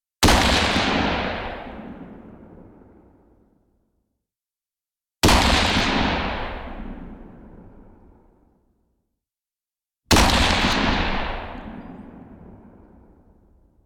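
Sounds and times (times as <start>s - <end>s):
M4 rifle shots: 0.2s - 2.2s, 5.2s - 7.4s, 10.1s - 12.3s.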